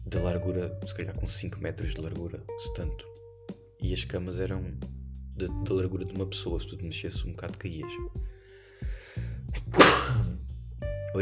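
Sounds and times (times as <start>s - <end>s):
speech: 0.1s - 3.2s, 3.8s - 8.3s
brief intake of breath: 8.3s - 9.5s
person sneezing: 9.6s - 10.3s.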